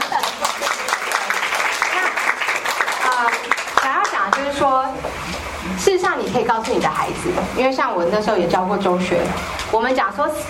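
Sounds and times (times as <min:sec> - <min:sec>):
audience clapping in a room: 0:00.0 - 0:04.8
speech: 0:04.6 - 0:10.4.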